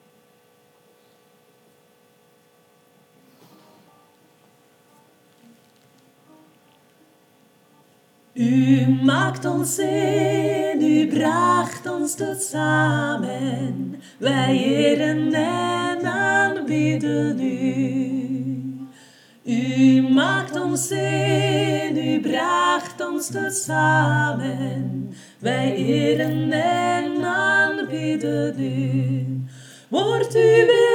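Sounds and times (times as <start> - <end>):
tutti sopranos singing together: 8.4 - 30.9.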